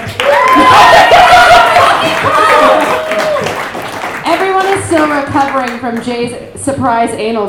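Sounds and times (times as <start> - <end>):
comedy show audience cheers and whoops: 0.0 - 3.8
live comedy show audience applause: 0.0 - 5.8
speech: 5.0 - 7.4.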